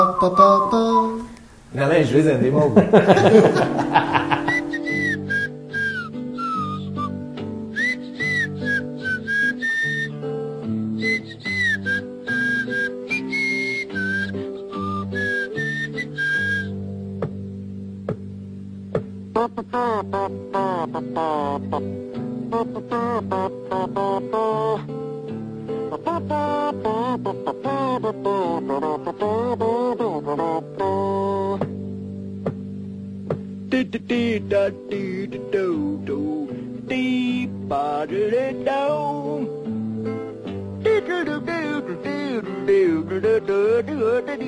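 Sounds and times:
person whistling a bright lilting tune: 0:00.0 - 0:01.3, 0:04.4 - 0:10.3, 0:11.0 - 0:16.8
speech: 0:00.2 - 0:04.2
laughter: 0:02.6 - 0:04.8
instrumental chords: 0:03.1 - 0:44.4.

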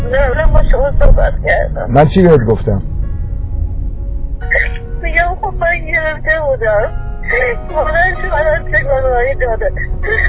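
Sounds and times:
low rumble: 0:00.0 - 0:10.2
speech: 0:00.1 - 0:02.9, 0:06.1 - 0:10.2
person crying and sobbing over a phone line: 0:09.8 - 0:10.2.

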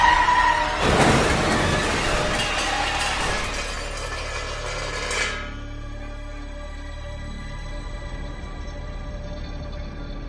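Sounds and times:
car crash impact: 0:00.1 - 0:05.6
glass shattering in a car crash: 0:00.8 - 0:05.6
car crash debris clattering and tinkling: 0:00.8 - 0:05.7.

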